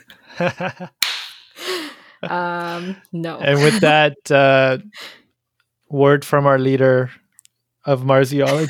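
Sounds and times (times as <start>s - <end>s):
speech: 0.0s - 1.0s, 2.2s - 5.2s, 5.9s - 7.2s, 7.8s - 8.6s
sharp slap with a sheet of math homework: 1.0s - 1.6s.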